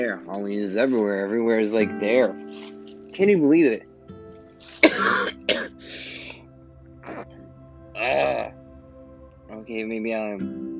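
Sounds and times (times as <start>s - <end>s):
speech: 0.0s - 3.9s, 9.5s - 10.7s
person clearing throat: 4.6s - 6.4s, 7.0s - 7.3s
person coughing sharply: 4.6s - 6.4s.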